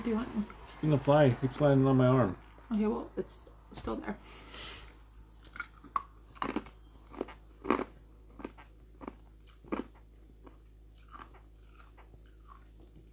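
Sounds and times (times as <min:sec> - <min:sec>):
speech: 0:00.0 - 0:04.7
chewing ice with squeaky crunches: 0:05.2 - 0:13.1.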